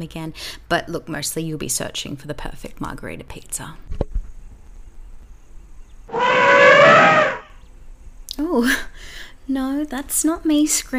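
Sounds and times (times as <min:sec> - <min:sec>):
speech: 0:00.0 - 0:04.1, 0:08.4 - 0:10.9
great grey elephant trumpeting on its way to a watering hole on safari: 0:06.1 - 0:07.5
low rumbling: 0:06.1 - 0:07.5.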